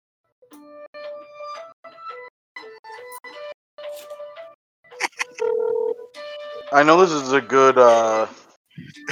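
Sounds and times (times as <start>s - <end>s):
phone ringing with electronic tone: 5.4s - 6.2s
speech: 6.7s - 9.1s.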